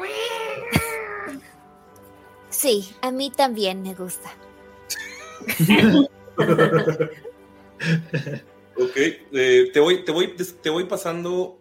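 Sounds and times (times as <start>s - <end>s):
wet cat meowing: 0.0s - 1.5s
speech: 2.6s - 11.5s
laughter: 4.9s - 8.4s.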